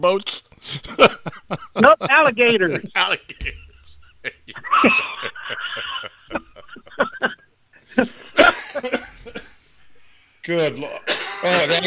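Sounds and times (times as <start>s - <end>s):
speech: 0.0s - 3.6s, 4.2s - 5.9s, 10.5s - 11.8s
laughter: 0.6s - 9.5s
person in a harsh hacking coughing fit: 8.3s - 9.6s, 11.1s - 11.7s.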